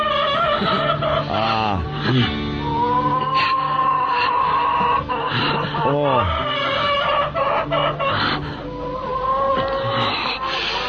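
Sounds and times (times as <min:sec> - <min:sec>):
laughter: 0:00.0 - 0:02.2, 0:04.8 - 0:08.4
chickens clucking and squawking: 0:00.0 - 0:10.8
speech: 0:00.6 - 0:02.5.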